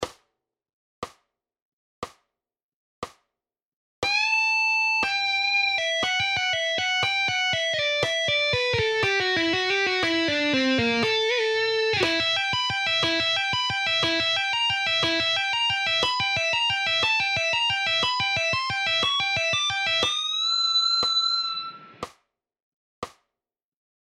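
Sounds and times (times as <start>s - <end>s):
rock guitar solo at 60 bpm: 4.1s - 22.0s.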